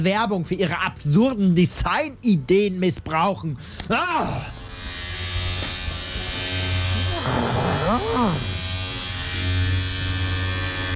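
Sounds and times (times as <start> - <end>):
speech: 0.0 - 4.6, 7.9 - 8.5
electric razor buzzing: 4.5 - 10.9.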